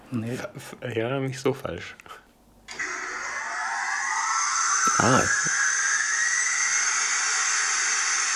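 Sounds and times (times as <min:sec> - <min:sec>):
speech: 0:00.1 - 0:02.2, 0:05.0 - 0:05.6
turbine rushing hiss with rising whine: 0:02.7 - 0:08.3.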